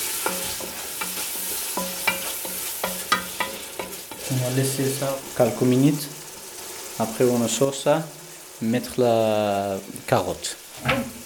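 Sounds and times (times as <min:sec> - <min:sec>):
spoon stirring grapes and sugar in a saucepan: 0:00.0 - 0:07.0
faint sizzle: 0:00.0 - 0:11.2
speech: 0:04.3 - 0:06.1, 0:07.0 - 0:11.2.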